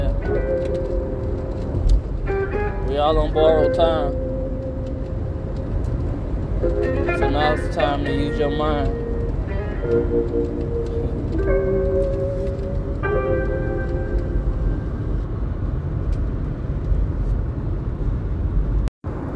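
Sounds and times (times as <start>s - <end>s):
brief tonal notes: 0.0s - 15.2s
car interior road and engine rumble while driving: 0.0s - 19.3s
speech: 3.0s - 4.2s, 6.6s - 9.0s, 9.8s - 10.7s.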